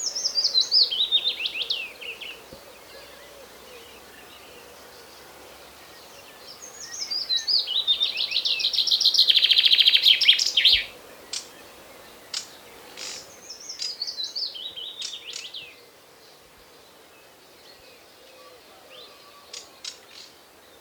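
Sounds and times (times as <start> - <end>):
common chaffinch Fringilla coelebs song: 0.0 - 15.8.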